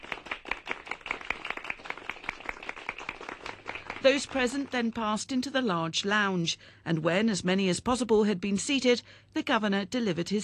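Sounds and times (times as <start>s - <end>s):
small group applauding: 0.0s - 5.2s
speech: 4.0s - 10.4s.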